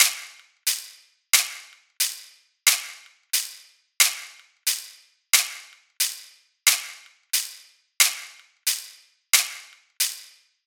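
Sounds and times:
trap shaker loop: 0.0 - 10.3.

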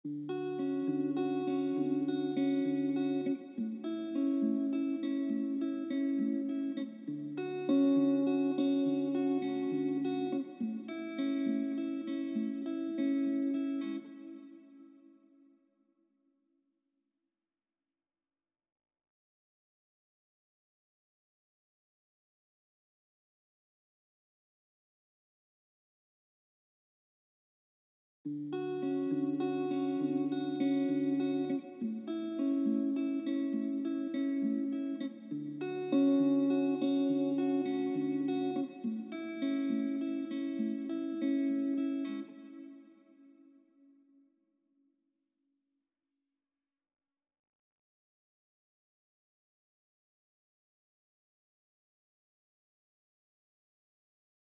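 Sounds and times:
arpeggiated guitar melody in A major: 0.1 - 15.4, 28.3 - 43.6.

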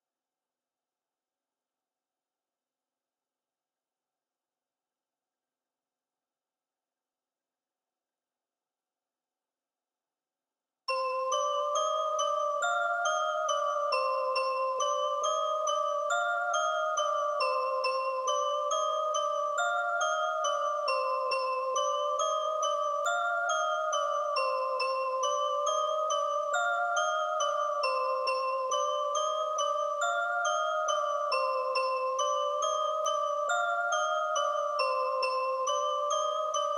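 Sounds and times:
bell melody loop in C minor at 138 BPM for trap: 10.9 - 36.7.

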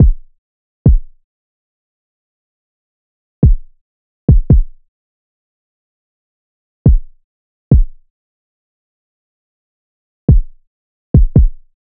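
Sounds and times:
kick drum: 0.0 - 0.3, 0.9 - 1.2, 3.4 - 4.8, 6.9 - 8.1, 10.3 - 11.7.

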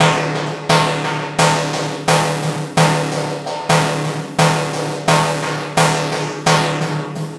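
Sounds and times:
techno synth loop in D at 130 BPM: 0.7 - 7.0.

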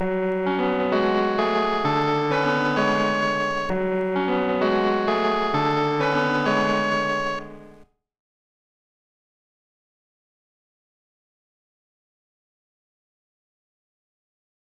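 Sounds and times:
synth keys melody loop in F sharp minor: 0.0 - 7.8.

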